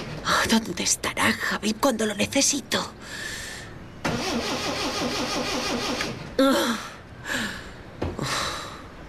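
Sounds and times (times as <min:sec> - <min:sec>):
speech: 0:00.4 - 0:03.4, 0:06.4 - 0:06.8
car engine cranking but failing to start: 0:04.1 - 0:06.3.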